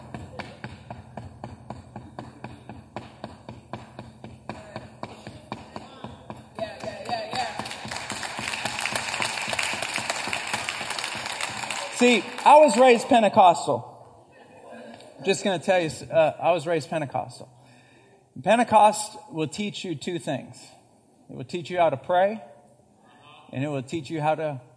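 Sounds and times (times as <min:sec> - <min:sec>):
sharp knocks: 0:00.0 - 0:10.7
speech: 0:12.0 - 0:13.9, 0:15.2 - 0:17.6, 0:18.4 - 0:22.5, 0:23.5 - 0:24.7.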